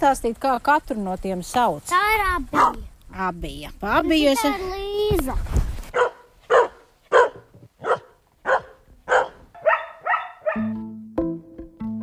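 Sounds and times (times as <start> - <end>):
speech: 0.0 - 5.6
collies barking: 5.9 - 10.8.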